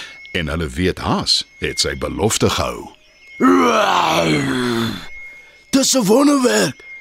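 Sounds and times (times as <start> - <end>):
speech: 0.4 - 5.0, 5.8 - 6.9
person imitating a lion's roar: 3.4 - 5.0.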